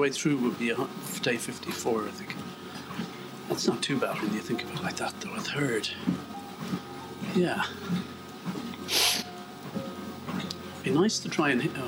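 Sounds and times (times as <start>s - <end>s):
speech: 0.0s - 2.5s, 3.5s - 8.1s, 10.8s - 11.8s
person sniffing through the nose: 8.9s - 9.3s.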